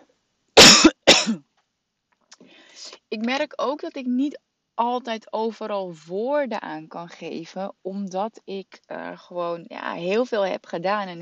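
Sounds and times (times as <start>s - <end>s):
person coughing harshly: 0.6s - 1.4s
speech: 3.1s - 11.2s.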